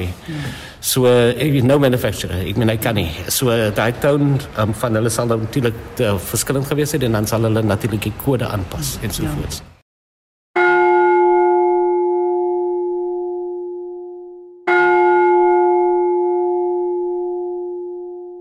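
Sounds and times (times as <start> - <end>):
speech: 0.0 - 9.7
ship's bell struck: 10.6 - 18.3.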